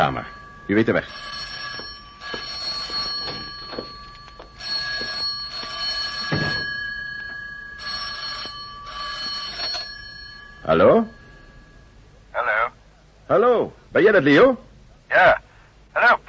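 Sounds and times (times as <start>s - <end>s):
telephone ringing with an electric trill: 0.0s - 12.8s
speech: 0.1s - 1.4s, 10.7s - 11.2s, 13.3s - 15.4s.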